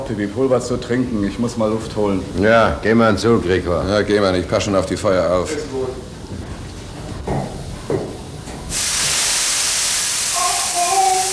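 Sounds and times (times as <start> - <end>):
speech: 0.1 - 6.1
steam hissing from a burst steam pipe on a ship: 8.6 - 11.3.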